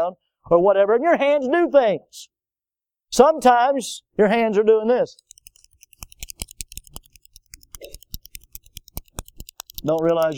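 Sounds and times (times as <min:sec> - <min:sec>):
speech: 0:00.0 - 0:02.4, 0:03.1 - 0:05.3, 0:09.8 - 0:10.3
pen clicking: 0:05.2 - 0:10.3.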